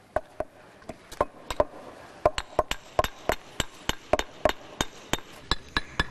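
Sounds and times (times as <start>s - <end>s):
hammer blows on paving stones at a building site by a church: 2.3s - 6.0s.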